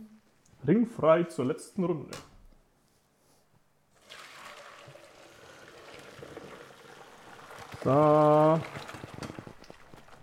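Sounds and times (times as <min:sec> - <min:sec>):
speech: 0:00.6 - 0:02.3, 0:07.9 - 0:08.9
water poured off cooked pasta draining into a sink: 0:04.0 - 0:10.2.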